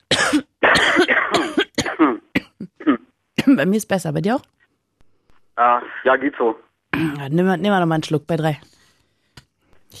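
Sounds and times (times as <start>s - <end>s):
two people coughing and throat-clearing: 0.0s - 3.6s
speech: 3.6s - 4.6s, 5.6s - 8.7s.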